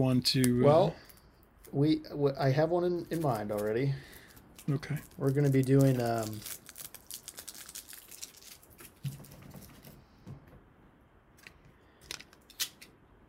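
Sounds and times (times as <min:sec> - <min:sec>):
speech: 0:00.0 - 0:01.1, 0:01.7 - 0:06.6
tape being peeled off a phone: 0:03.1 - 0:09.9.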